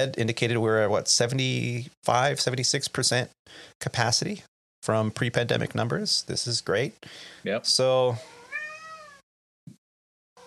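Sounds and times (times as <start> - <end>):
speech: 0.0 - 8.4
cat meowing: 8.2 - 9.2.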